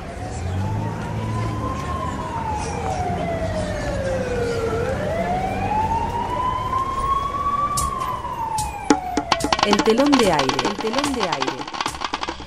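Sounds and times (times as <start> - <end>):
ambulance siren wailing: 0.0 - 11.6
sharp knocks: 8.6 - 12.4
speech: 9.8 - 11.7.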